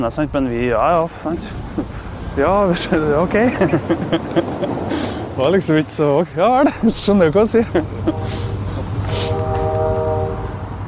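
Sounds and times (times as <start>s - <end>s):
speech: 0.0s - 8.5s
train rumbling past: 1.0s - 10.8s
laughter: 1.5s - 5.6s, 6.4s - 9.4s
long steady train horn blast: 8.0s - 10.8s.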